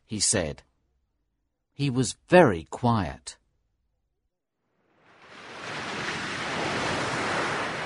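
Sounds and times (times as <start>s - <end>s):
speech: 0.1s - 0.7s, 1.8s - 3.4s
ocean waves crashing against rocks below sea cliffs: 5.1s - 7.8s.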